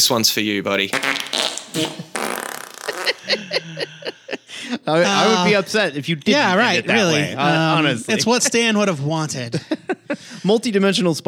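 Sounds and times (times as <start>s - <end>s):
speech: 0.0s - 2.4s, 3.3s - 11.2s
loud buzzing fart noise with sputtering pops: 0.8s - 3.4s
laughter: 1.8s - 10.5s.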